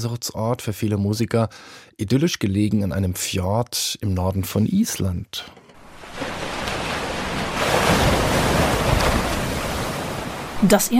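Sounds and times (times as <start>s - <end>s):
speech: 0.0s - 5.6s, 10.6s - 10.9s
ocean waves breaking on fjord shore: 5.8s - 10.9s.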